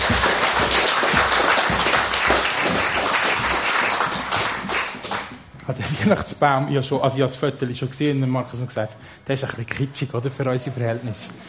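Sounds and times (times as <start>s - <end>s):
crowd applauding: 0.0s - 5.5s
speech: 6.0s - 11.4s.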